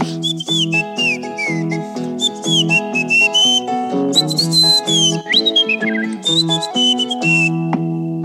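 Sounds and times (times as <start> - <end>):
whistle: 0.2 - 8.1.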